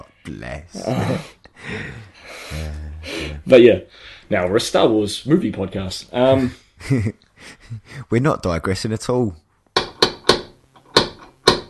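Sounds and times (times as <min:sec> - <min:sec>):
speech: 0:00.0 - 0:09.4
knocking on a door: 0:09.8 - 0:11.6.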